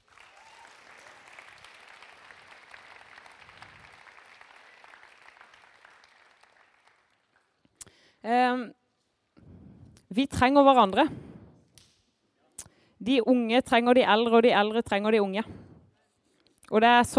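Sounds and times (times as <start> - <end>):
room full of people applauding: 0.0 - 7.5
speech: 8.2 - 8.8, 10.2 - 11.3, 13.0 - 15.6, 16.7 - 17.1.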